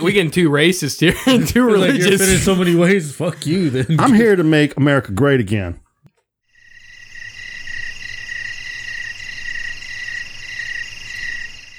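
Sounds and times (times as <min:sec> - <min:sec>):
laughter: 0:00.0 - 0:04.8
speech: 0:00.0 - 0:05.8
chorus of crickets chirping: 0:06.6 - 0:11.7.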